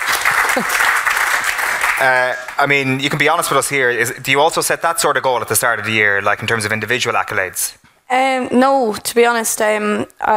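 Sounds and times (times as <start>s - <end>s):
round of applause from an audience honoring a footballer: 0.0s - 2.9s
speech: 0.6s - 0.9s, 2.0s - 10.3s.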